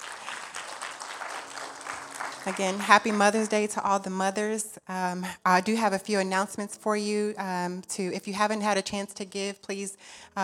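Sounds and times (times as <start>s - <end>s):
church audience applauding at a Mother's Day service: 0.0s - 3.6s
speech: 2.4s - 10.4s.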